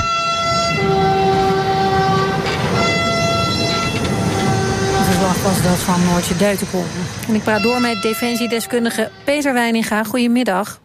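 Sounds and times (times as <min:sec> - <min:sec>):
freight train carrying pick-up trucks rumbling on tracks: 0:00.0 - 0:10.8
sharp metallic squeals: 0:01.8 - 0:09.5
speech: 0:05.5 - 0:10.8.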